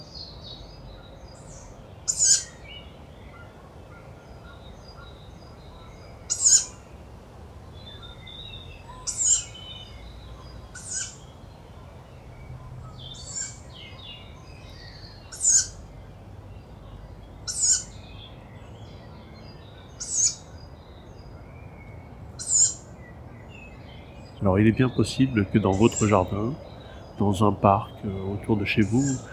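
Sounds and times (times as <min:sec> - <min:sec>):
young tawny owls giving hissing begging calls: 0:02.1 - 0:02.6, 0:06.2 - 0:06.8, 0:08.8 - 0:09.6, 0:10.7 - 0:11.2, 0:15.3 - 0:15.8, 0:17.5 - 0:18.0, 0:20.0 - 0:20.5, 0:22.4 - 0:22.8
laughter: 0:24.4 - 0:29.3
speech: 0:24.5 - 0:29.3.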